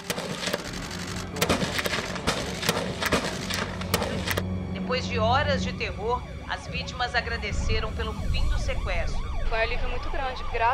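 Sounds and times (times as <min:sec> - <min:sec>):
police gunshots: 0:00.0 - 0:04.4
speech: 0:05.0 - 0:10.7.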